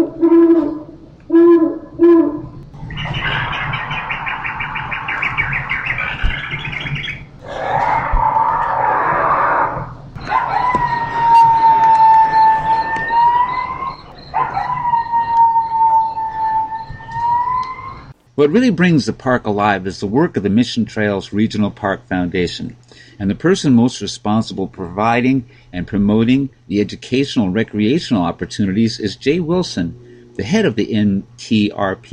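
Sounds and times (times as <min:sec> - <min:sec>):
coyote howling: 0:00.0 - 0:18.2
owl hooting: 0:00.0 - 0:18.2, 0:29.5 - 0:30.6
high chirping bird calls: 0:02.8 - 0:07.4, 0:10.2 - 0:18.1
speech: 0:18.4 - 0:32.1.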